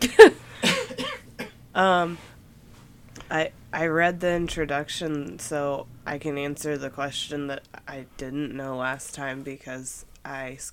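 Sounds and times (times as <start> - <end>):
person coughing: 0.0 - 1.6
short voiced hum: 0.0 - 10.7
speech: 1.8 - 2.3, 3.3 - 10.7.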